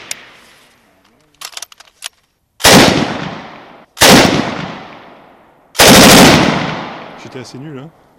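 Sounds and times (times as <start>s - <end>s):
automatic weapons firing at a shooting range: 2.6s - 4.9s, 5.8s - 7.0s
speech: 7.2s - 8.1s.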